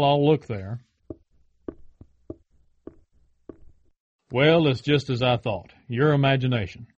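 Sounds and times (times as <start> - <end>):
speech: 0.0 - 0.9, 4.3 - 6.9
knocking on a door: 1.1 - 3.8.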